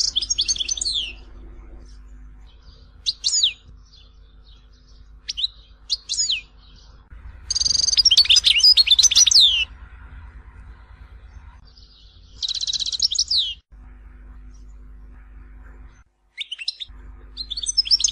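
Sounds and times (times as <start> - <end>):
European goldfinch song: 0.0 - 1.3, 1.9 - 9.7, 11.7 - 13.6, 16.4 - 18.1
low hum: 0.0 - 18.1.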